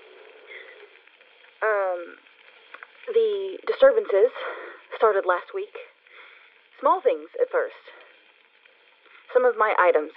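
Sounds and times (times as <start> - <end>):
thin hissy radio-like murmur: 0.0 - 10.1
speech: 2.0 - 2.3, 3.1 - 5.8, 6.8 - 8.0, 9.3 - 10.1.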